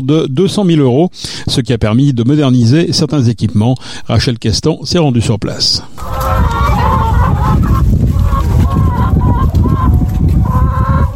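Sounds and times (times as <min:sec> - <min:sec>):
speech: 0:00.0 - 0:06.6
many hens clucking and squawking on a farm: 0:05.9 - 0:11.1.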